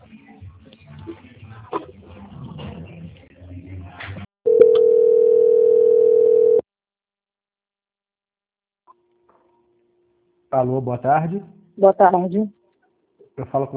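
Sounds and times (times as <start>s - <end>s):
quiet talk: 0.0s - 4.3s
telephone line tone while a call is transferred: 4.5s - 6.6s
speech: 10.6s - 12.6s, 13.4s - 13.7s.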